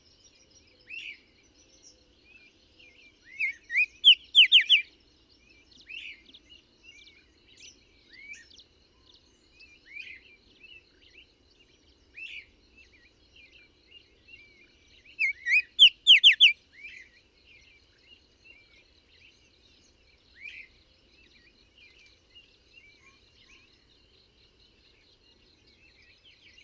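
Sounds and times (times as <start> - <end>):
bird song chirps and whistles: 3.3 - 4.9, 15.1 - 17.1.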